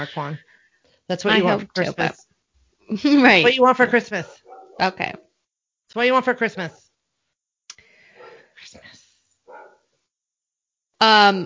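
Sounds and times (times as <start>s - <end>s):
speech: 0.0s - 0.5s, 1.1s - 2.3s, 2.9s - 5.2s, 5.9s - 6.8s, 11.0s - 11.4s
quiet voices: 1.2s - 2.2s
dog barking: 4.2s - 4.8s, 8.1s - 8.6s, 9.5s - 9.9s.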